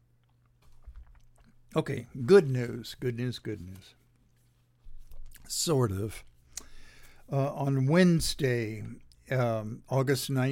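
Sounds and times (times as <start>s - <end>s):
faint steady electrical hum: 0.0s - 10.4s
sipping and swallowing grape juice: 0.2s - 1.8s
speech: 1.8s - 4.0s, 5.5s - 6.3s, 7.3s - 10.4s.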